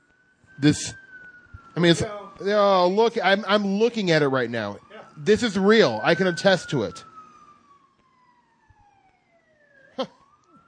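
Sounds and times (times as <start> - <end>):
emergency vehicle siren outside: 0.0 - 10.6
speech: 0.6 - 1.0, 1.8 - 7.1, 10.0 - 10.2
bursts of voices: 1.8 - 7.0.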